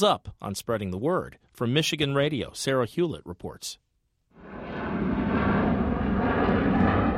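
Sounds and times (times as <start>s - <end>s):
speech: 0.0s - 3.8s
airplane engines roaring at an airport: 4.4s - 7.1s.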